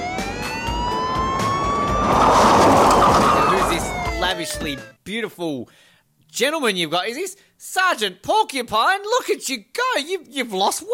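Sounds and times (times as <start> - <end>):
police siren wailing: 0.0 - 5.0
constant rumble of traffic: 0.7 - 4.2
speech: 4.4 - 10.9.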